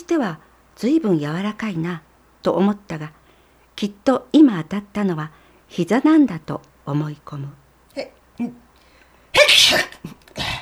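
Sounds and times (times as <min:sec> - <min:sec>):
speech: 0:00.1 - 0:03.2, 0:03.8 - 0:08.6, 0:09.3 - 0:10.2
short breathy intakes before a sneeze: 0:08.0 - 0:10.6
loud explosive sneeze: 0:09.4 - 0:10.6.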